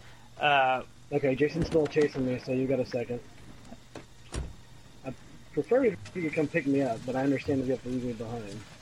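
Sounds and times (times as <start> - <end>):
low steady hum: 0.0 - 8.8
speech: 0.4 - 3.4, 5.0 - 8.7
video game car door opening and shutting: 3.9 - 4.6.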